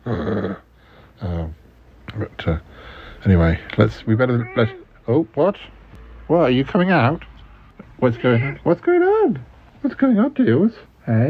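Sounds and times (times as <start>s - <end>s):
dog growling low: 0.0s - 0.7s, 4.2s - 4.8s
speech: 2.4s - 7.3s, 8.0s - 11.2s.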